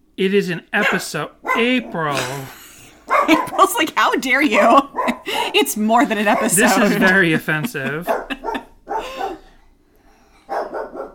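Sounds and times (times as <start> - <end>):
speech: 0.2 - 2.6, 3.3 - 8.3
dog barking: 0.8 - 2.1, 3.1 - 3.7, 4.8 - 5.2, 8.0 - 9.6, 10.4 - 11.1
laughter: 2.0 - 9.4.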